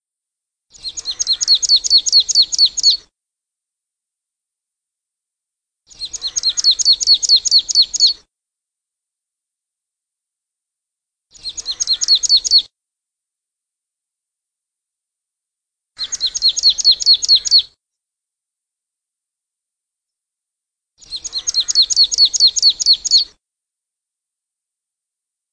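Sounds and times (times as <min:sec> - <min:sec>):
marsh tit singing rapid high chipping notes: 0:00.7 - 0:03.0, 0:05.9 - 0:08.2, 0:11.3 - 0:12.7, 0:16.0 - 0:17.8, 0:21.0 - 0:23.3.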